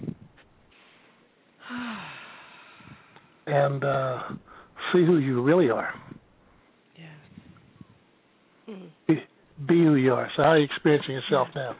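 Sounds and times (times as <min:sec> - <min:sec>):
deep breath being drawn: 0:00.7 - 0:03.4, 0:04.2 - 0:04.9
speech: 0:03.5 - 0:06.0, 0:09.1 - 0:11.7
faint low voiced tone sliding downward: 0:03.5 - 0:06.2, 0:08.7 - 0:11.7.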